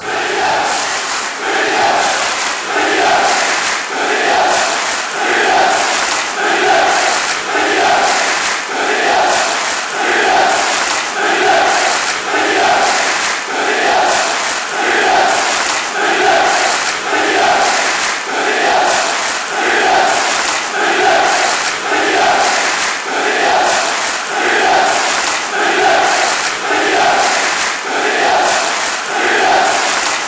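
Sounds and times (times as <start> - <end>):
fans chanting: 0.0 - 30.2.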